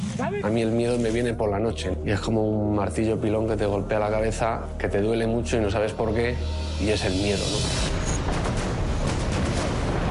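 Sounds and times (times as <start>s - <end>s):
speech: 0.2s - 7.9s
heavy explosions shaking a hotel: 6.7s - 10.0s.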